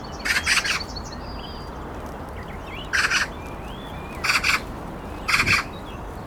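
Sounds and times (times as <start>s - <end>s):
Pica pica Eurasian magpie harsh rasping chatter: 0.3s - 0.9s, 2.9s - 3.3s, 4.2s - 4.7s, 5.3s - 5.7s.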